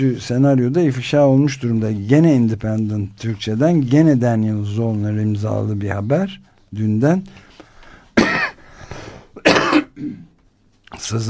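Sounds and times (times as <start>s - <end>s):
speech: 0.0s - 7.5s, 10.9s - 11.2s
person coughing harshly: 8.2s - 8.6s, 9.4s - 10.4s.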